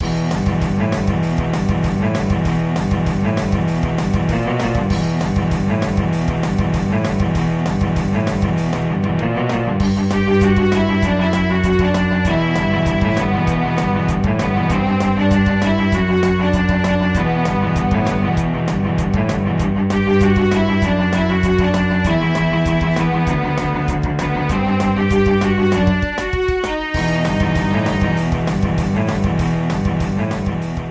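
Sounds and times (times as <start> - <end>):
bowed cello: 0.0 - 30.8.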